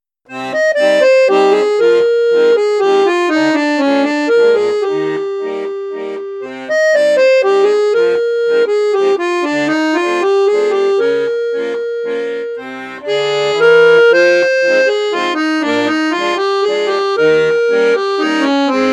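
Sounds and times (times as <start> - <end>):
Piermaria Prodige Plus bassoon register: 0.3 - 18.9.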